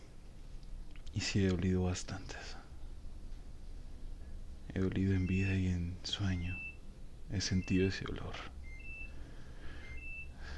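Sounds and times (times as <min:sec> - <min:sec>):
low hum: 0:00.0 - 0:10.5
speech: 0:01.2 - 0:02.6, 0:04.7 - 0:06.7, 0:07.3 - 0:08.6
electronic alarm beeps: 0:05.0 - 0:10.5.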